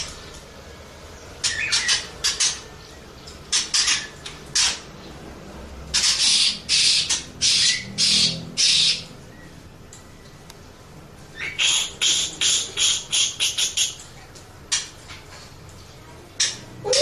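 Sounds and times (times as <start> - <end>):
Oriental magpie-robin rasping hissy bursts and short harsh notes: 1.2 - 5.2, 5.9 - 9.2, 11.3 - 14.0.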